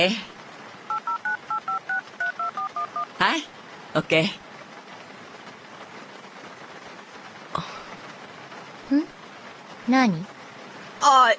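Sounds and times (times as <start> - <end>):
speech: 0.0 - 0.3, 3.2 - 4.4, 8.9 - 9.2, 9.9 - 10.4, 11.0 - 11.3
two-tone telephone keypad beeps as a phone number is dialed: 0.9 - 3.1.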